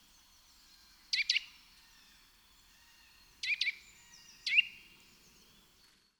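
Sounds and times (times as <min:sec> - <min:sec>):
background hiss: 0:00.0 - 0:05.9
Eurasian nuthatch Sitta europaea calling: 0:02.8 - 0:04.8.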